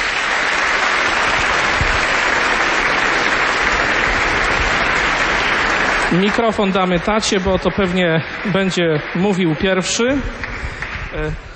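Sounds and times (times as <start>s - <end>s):
audience applause: 0.0s - 11.4s
speech: 6.1s - 11.5s.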